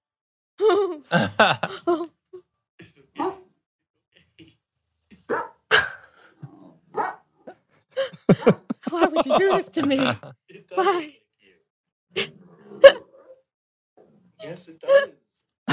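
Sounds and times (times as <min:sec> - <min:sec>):
laughter: 0:00.6 - 0:02.1, 0:08.0 - 0:11.1
speech: 0:00.9 - 0:02.0, 0:09.3 - 0:11.2
dog barking and yipping at a video game likeness: 0:03.2 - 0:03.5, 0:05.3 - 0:05.6, 0:06.9 - 0:07.3.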